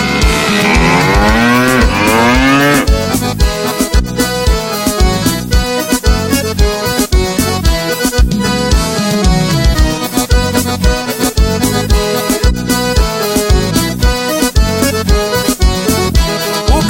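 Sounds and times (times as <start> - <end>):
long wavering cow moo: 0.0 - 3.1
upbeat band music with a punchy beat: 0.0 - 16.8.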